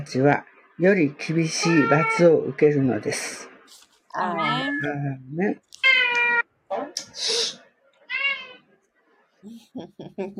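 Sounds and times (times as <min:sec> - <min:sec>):
speech: 0:00.0 - 0:03.5, 0:04.2 - 0:05.7, 0:07.2 - 0:07.4, 0:09.4 - 0:10.3
cat meowing: 0:01.6 - 0:02.3, 0:04.3 - 0:05.0, 0:05.8 - 0:06.5, 0:08.1 - 0:08.6.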